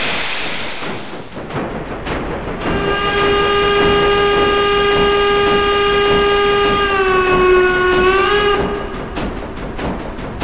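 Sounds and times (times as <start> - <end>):
train rumbling on rails: 0.0 - 10.4
train whistle or horn blast: 2.6 - 9.3.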